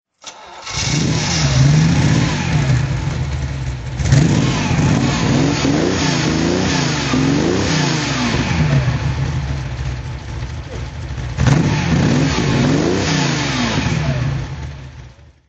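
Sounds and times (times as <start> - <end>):
Ferrari Daytona engine throttle: 0.7 - 15.2.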